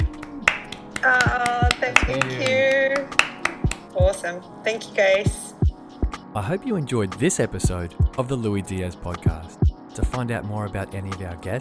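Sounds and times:
small group giving sharp hand claps: 0:00.0 - 0:04.0
speech: 0:01.0 - 0:02.6, 0:04.0 - 0:05.4, 0:06.4 - 0:11.6.

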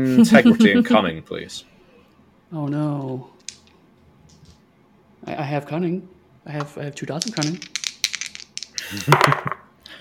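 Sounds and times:
speech: 0:00.0 - 0:01.7, 0:02.5 - 0:03.3, 0:05.2 - 0:07.8, 0:08.9 - 0:09.6
handful of six dice rattling and tumbling across a hard surface: 0:03.4 - 0:03.7, 0:06.6 - 0:09.6.

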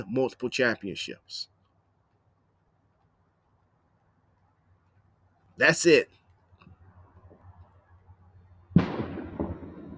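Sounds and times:
speech: 0:00.0 - 0:01.5, 0:05.6 - 0:06.2
distant gunshot outdoors: 0:08.7 - 0:09.9.

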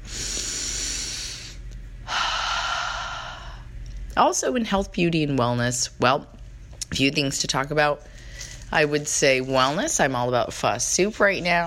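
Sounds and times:
deep breath in and out: 0:00.0 - 0:03.7
speech: 0:04.2 - 0:11.6.

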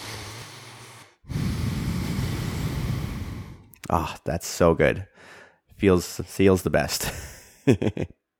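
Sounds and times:
long deep breath drawn in through the nose: 0:00.0 - 0:03.7, 0:05.1 - 0:05.7
speech: 0:03.9 - 0:08.2.

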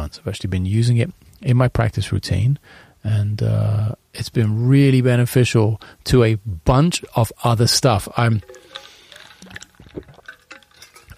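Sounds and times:
speech: 0:00.0 - 0:08.9, 0:09.5 - 0:10.1
spilled water splashing and dribbling: 0:08.1 - 0:11.1.

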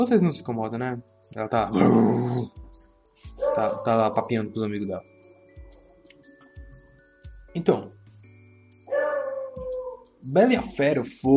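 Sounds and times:
speech: 0:00.0 - 0:02.6, 0:03.2 - 0:05.1, 0:07.6 - 0:08.0, 0:10.2 - 0:11.3
dog giving a drawn-out whining bark: 0:03.4 - 0:04.3, 0:08.9 - 0:10.1.

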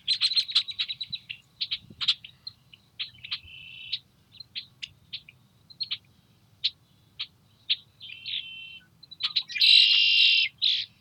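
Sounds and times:
Red-winged blackbird song with buzzy trill in cattails in Montana: 0:00.0 - 0:10.9.

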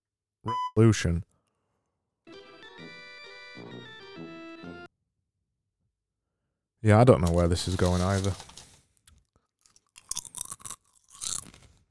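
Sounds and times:
speech: 0:00.4 - 0:01.3, 0:06.8 - 0:08.5
crunchy chewing of crisps: 0:07.3 - 0:11.8.

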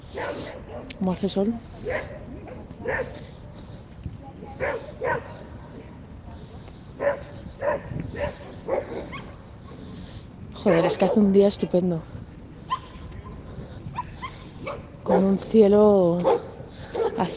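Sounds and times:
several dogs barking outdoors on a sunny day: 0:00.1 - 0:00.9, 0:01.8 - 0:03.3, 0:04.6 - 0:05.4, 0:07.0 - 0:09.8, 0:10.6 - 0:11.3, 0:12.7 - 0:13.4, 0:14.0 - 0:15.4, 0:16.2 - 0:17.3
speech: 0:00.2 - 0:03.3, 0:10.6 - 0:12.2, 0:15.2 - 0:16.4.

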